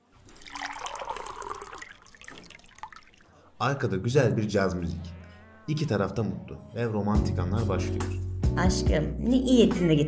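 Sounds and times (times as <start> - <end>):
liquid pouring into stemmed glasses: 0.2 - 3.4
faint drips of liquid: 0.2 - 3.6
speech: 3.6 - 10.0.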